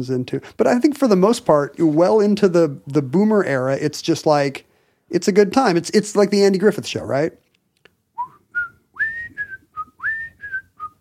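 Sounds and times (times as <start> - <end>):
speech: 0.0 - 7.4
cheerful whistled melody: 8.2 - 10.9.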